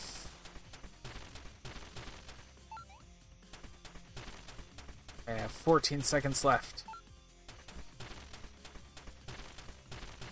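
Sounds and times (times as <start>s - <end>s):
training dummies being destroyed in a video game: 0.0s - 2.9s, 3.5s - 6.6s, 7.5s - 10.3s
speech: 5.3s - 6.8s.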